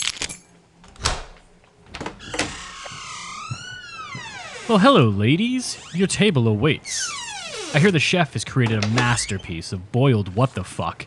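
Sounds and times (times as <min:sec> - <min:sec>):
door clunks and rattles in a grand hall: 0:00.8 - 0:04.6
long high-pitched door creak in a grand hall: 0:00.8 - 0:09.6
speech: 0:04.7 - 0:11.0.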